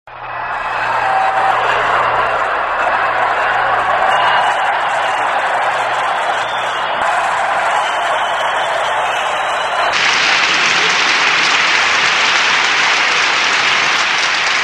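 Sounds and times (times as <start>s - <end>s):
applause: 0.1s - 14.6s.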